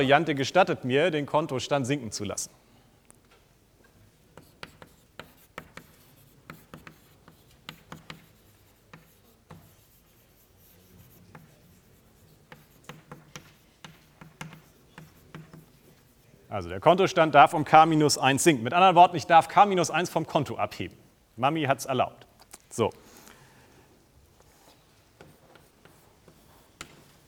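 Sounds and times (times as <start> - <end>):
speech: 0.0 - 2.6, 16.6 - 23.0
marker or chalk writing on a board during a math lecture: 4.3 - 16.5, 24.3 - 27.2.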